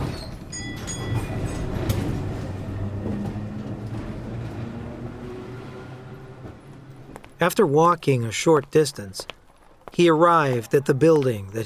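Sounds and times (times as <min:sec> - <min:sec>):
tram rumbling along its tracks: 0:00.0 - 0:07.9
speech: 0:07.4 - 0:11.6.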